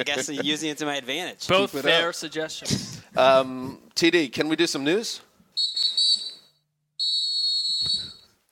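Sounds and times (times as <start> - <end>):
speech: 0.0 - 5.9
referee's whistle blasts: 5.6 - 8.3.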